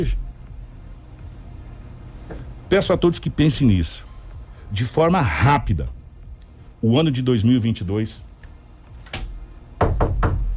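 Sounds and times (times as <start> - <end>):
speech: 0.0 - 0.3, 2.7 - 4.1, 4.7 - 6.0, 6.8 - 8.3
knocking on a door: 9.2 - 10.5.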